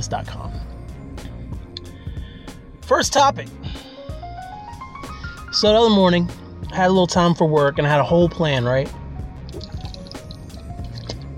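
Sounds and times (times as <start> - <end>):
speech: 0.0 - 0.7, 2.9 - 3.9, 5.5 - 9.0
water pouring or sipping: 9.5 - 11.3.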